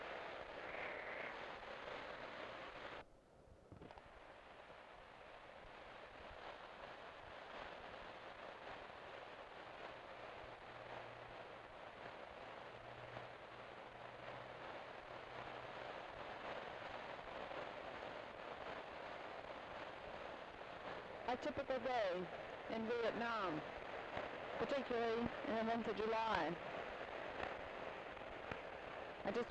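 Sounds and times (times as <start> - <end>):
heavy rain pouring down in torrents: 0.0 - 3.0, 9.3 - 29.5
speech: 21.3 - 23.8, 24.6 - 26.8, 29.3 - 29.5.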